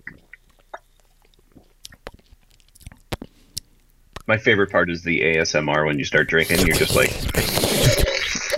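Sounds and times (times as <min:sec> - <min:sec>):
wet mouth sounds: 0:00.0 - 0:03.7, 0:06.4 - 0:08.5
chewing a crunchy key lime wafer candy bar: 0:00.2 - 0:03.7, 0:06.5 - 0:08.5
speech: 0:04.3 - 0:07.9.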